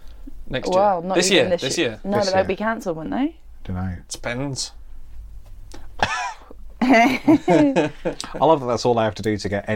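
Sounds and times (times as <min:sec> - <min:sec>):
speech: 0:00.5 - 0:04.8, 0:06.8 - 0:09.7
cough: 0:06.0 - 0:06.6
laughter: 0:06.0 - 0:08.5.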